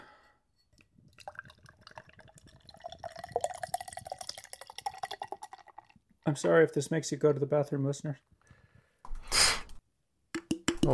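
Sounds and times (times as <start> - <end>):
Mexican lager pouring into a glass: 0.8 - 6.0
speech: 6.3 - 8.3.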